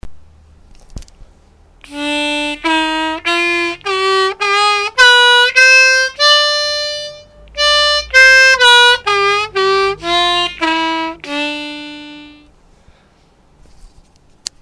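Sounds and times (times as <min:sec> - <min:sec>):
harmonica melody in Bayati Shuri mode: 0:01.8 - 0:12.6.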